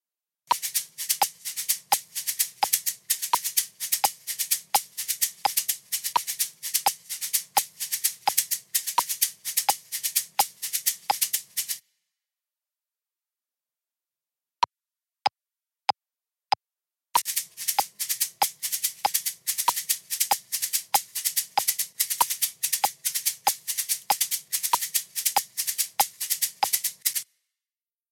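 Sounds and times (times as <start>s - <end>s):
shakers playing accents in twelve-eight time: 0.5s - 11.8s, 17.2s - 27.3s.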